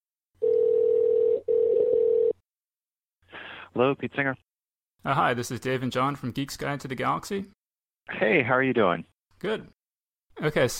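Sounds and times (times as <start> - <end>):
telephone dial tone: 0.4 - 2.4
speech: 3.7 - 9.8, 10.4 - 10.7.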